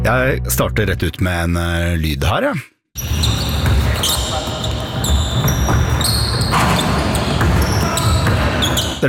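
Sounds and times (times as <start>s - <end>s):
speech: 0.1s - 3.3s
basketball shoes squeaking on a sports-arena court: 3.0s - 9.0s
constant dense din: 3.0s - 9.0s.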